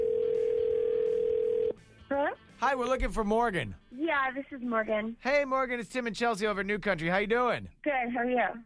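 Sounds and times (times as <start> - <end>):
electronic telephone ringing tone: 0.0 - 1.8
speech: 2.1 - 8.6.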